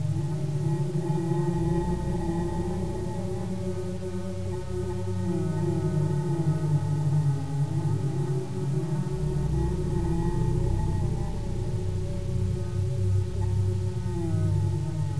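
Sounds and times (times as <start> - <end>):
person chanting a mantra: 0.0 - 15.1.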